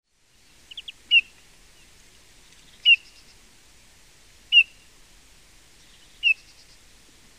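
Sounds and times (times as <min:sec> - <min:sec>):
Eurasian bullfinch Pyrrhula pyrrhula giving soft short piping whistles: 0:00.7 - 0:01.3, 0:04.5 - 0:04.8, 0:06.1 - 0:06.7.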